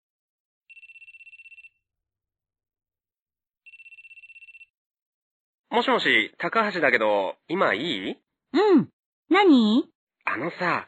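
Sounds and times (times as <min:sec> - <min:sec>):
telephone ringing with electronic trill: 0:00.7 - 0:01.9, 0:03.6 - 0:04.9
speech: 0:05.7 - 0:10.8.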